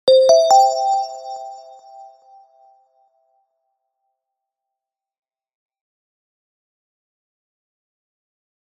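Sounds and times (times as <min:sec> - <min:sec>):
notification tone: 0:00.1 - 0:02.1.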